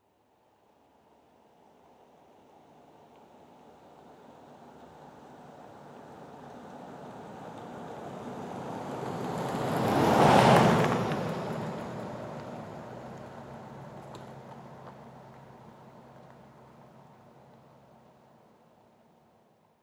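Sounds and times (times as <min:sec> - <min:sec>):
Jeep Cherokee passing slowly: 0:02.8 - 0:18.5.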